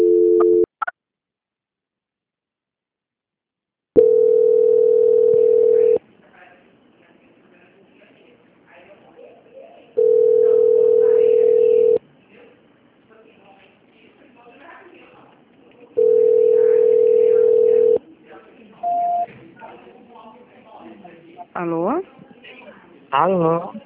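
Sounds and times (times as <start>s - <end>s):
telephone line tone while a call is being transferred: 0.0s - 0.7s, 4.0s - 6.0s, 10.0s - 12.0s, 16.0s - 18.0s, 18.8s - 19.3s
faint noise: 4.0s - 23.8s.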